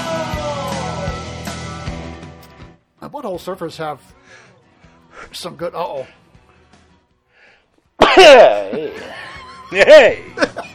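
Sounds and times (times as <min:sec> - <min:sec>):
speech: 0:03.2 - 0:04.5, 0:05.2 - 0:06.2, 0:08.2 - 0:10.7
person acting out an exaggerated sneeze: 0:08.0 - 0:09.0
laughter: 0:08.0 - 0:10.7.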